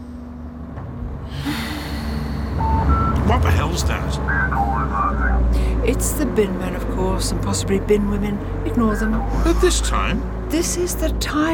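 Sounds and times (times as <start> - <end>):
deep synchronised breathing through the nose while lying beside another person: 1.3 - 2.8
speech: 3.4 - 11.5.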